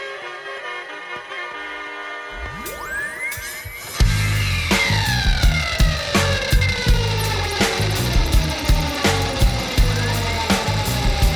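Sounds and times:
emergency sirens wailing: 0:04.0 - 0:11.3
heavy steady rhythmic thumping: 0:04.0 - 0:11.3.

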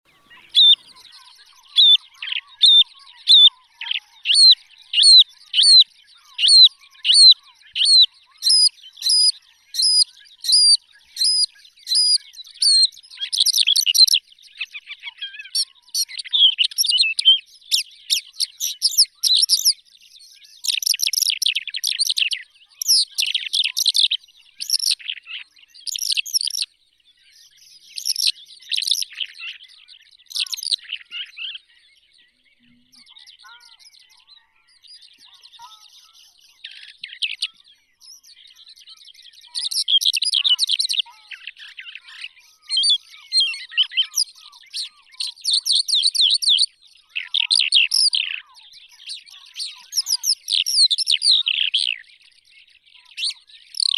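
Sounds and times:
Calandrella cheleensis lark singing: 0:00.0 - 0:53.9.

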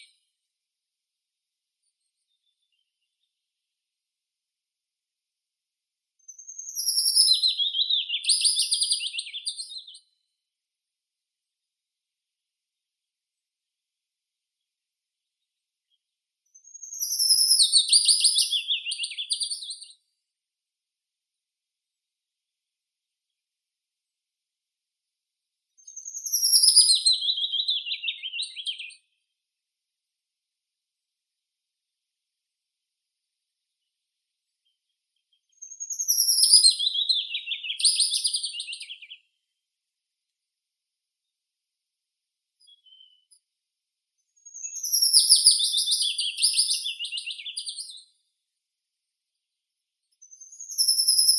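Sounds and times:
willow warbler Phylloscopus trochilus: 0:06.4 - 0:09.9, 0:17.1 - 0:19.8, 0:26.3 - 0:28.9, 0:36.1 - 0:39.1, 0:44.8 - 0:48.0.

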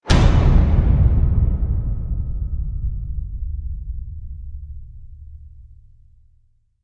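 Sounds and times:
metallic gut punch slams: 0:00.0 - 0:06.5.

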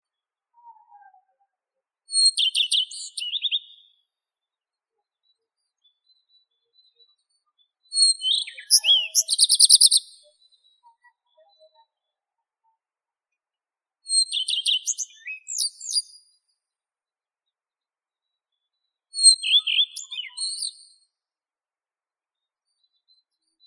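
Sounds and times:
common redstart Phoenicurus phoenicurus calling: 0:02.2 - 0:03.9, 0:08.0 - 0:11.8, 0:14.1 - 0:16.2, 0:19.2 - 0:20.8.

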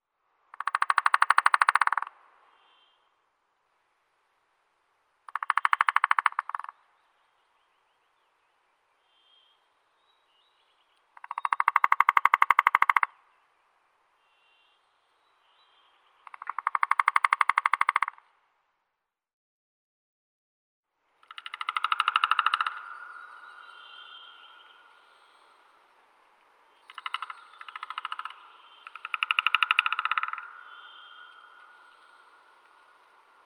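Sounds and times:
three-toed woodpecker Picoides tridactylus: 0:00.6 - 0:02.1, 0:05.3 - 0:06.8, 0:11.2 - 0:13.2, 0:16.2 - 0:18.2, 0:21.2 - 0:25.6, 0:26.8 - 0:33.4.

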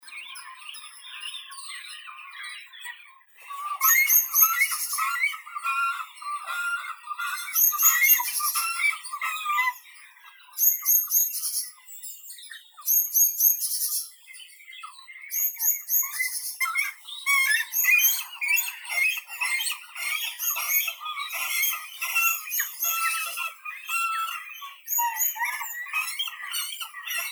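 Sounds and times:
great cormorant Phalacrocorax carbo calling: 0:03.4 - 0:09.8, 0:17.3 - 0:27.3.

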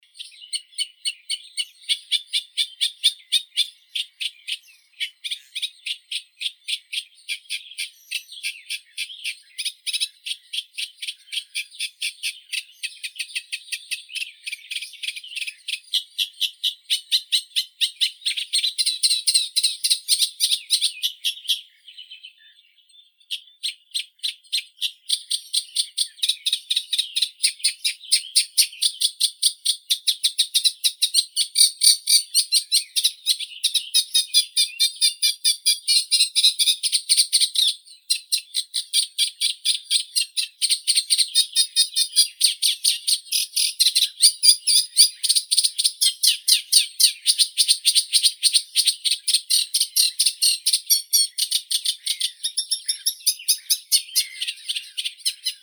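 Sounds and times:
reed warbler Acrocephalus scirpaceus: 0:00.0 - 0:55.6.

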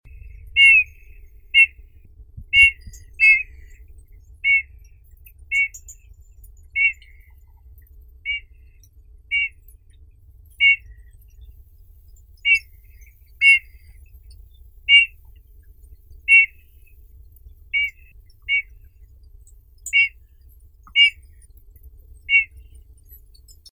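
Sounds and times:
nature sounds: 0:00.0 - 0:23.7
grey bullfinch Pyrrhula cineracea: 0:00.1 - 0:01.8, 0:02.4 - 0:03.8, 0:04.4 - 0:04.8, 0:05.5 - 0:06.0, 0:06.8 - 0:07.3, 0:09.3 - 0:09.6, 0:10.6 - 0:10.9, 0:12.4 - 0:14.0, 0:14.7 - 0:15.4, 0:16.1 - 0:16.9, 0:17.6 - 0:18.8, 0:19.8 - 0:20.2, 0:20.9 - 0:21.6, 0:22.2 - 0:22.6.

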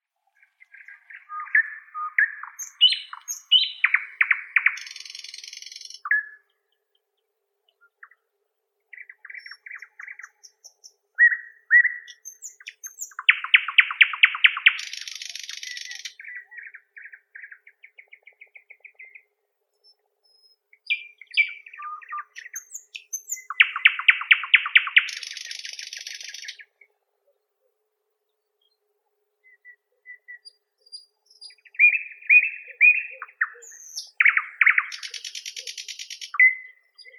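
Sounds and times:
common nightingale Luscinia luscinia singing: 0:00.4 - 0:08.2, 0:08.9 - 0:27.4, 0:29.4 - 0:37.1.

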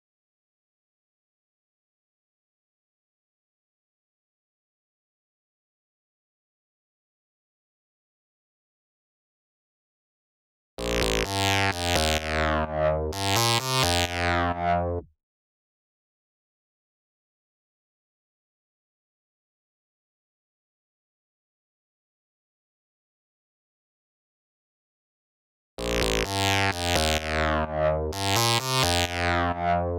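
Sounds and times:
synth bass lead: 0:10.8 - 0:15.0, 0:25.8 - 0:29.9.

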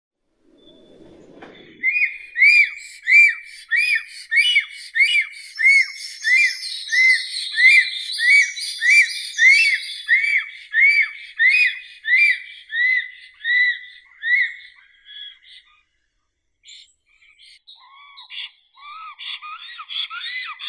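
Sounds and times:
black stork Ciconia nigra voices: 0:02.0 - 0:15.6.

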